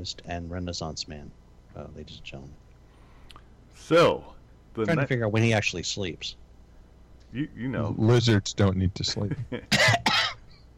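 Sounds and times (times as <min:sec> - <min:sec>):
speech: 0:00.0 - 0:02.6, 0:03.8 - 0:06.4, 0:07.3 - 0:10.0
person coughing after choking on a drink: 0:09.7 - 0:10.5.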